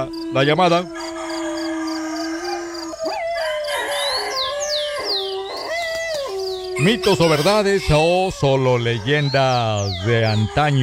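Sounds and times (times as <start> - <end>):
speech: 0.0 - 1.0, 6.8 - 10.8
birds chirping: 0.0 - 10.8
dog howling: 0.0 - 10.8.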